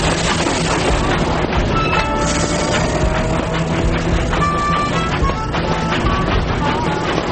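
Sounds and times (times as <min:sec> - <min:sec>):
mail train rolling along the rails: 0:00.0 - 0:07.3.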